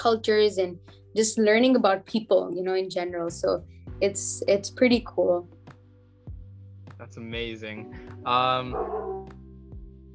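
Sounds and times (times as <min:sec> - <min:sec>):
speech: 0:00.0 - 0:05.6, 0:07.1 - 0:09.3
dog barking: 0:08.7 - 0:09.3.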